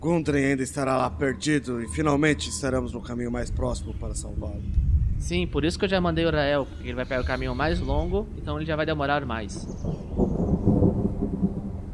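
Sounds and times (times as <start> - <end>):
speech: 0.0 - 10.1
thunder rumbling before rain: 0.6 - 11.9
faint high chirp: 0.8 - 4.8.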